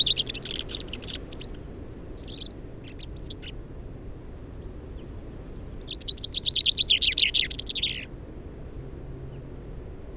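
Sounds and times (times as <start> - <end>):
common chaffinch (Fringilla coelebs) singing: 0.0 - 3.5, 5.8 - 8.1.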